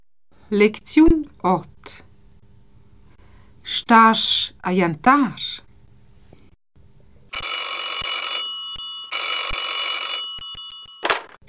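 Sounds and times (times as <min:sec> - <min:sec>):
speech: 0:00.5 - 0:02.0, 0:03.7 - 0:05.6
old-style telephone bell ringing: 0:07.4 - 0:11.3.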